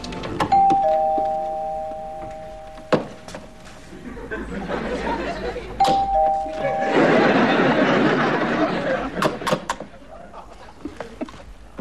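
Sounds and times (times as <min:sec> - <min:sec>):
two-tone doorbell chime: 0:00.5 - 0:03.7, 0:05.8 - 0:07.6
laughter: 0:03.9 - 0:05.8, 0:06.4 - 0:11.2.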